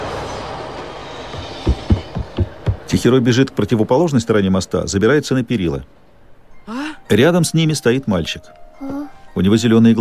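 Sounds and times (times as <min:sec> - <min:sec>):
train emerging from a tunnel: 0:00.0 - 0:06.4
speech: 0:02.9 - 0:06.0, 0:07.1 - 0:09.9.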